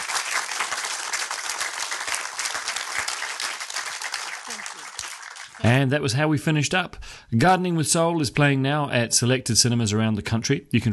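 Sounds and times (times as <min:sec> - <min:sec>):
audience applauding: 0:00.0 - 0:05.7
speech: 0:05.6 - 0:10.9.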